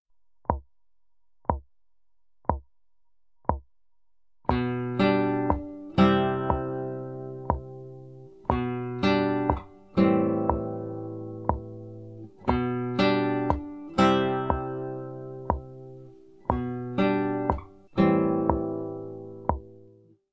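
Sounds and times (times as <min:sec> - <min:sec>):
picking: 0:04.5 - 0:20.0.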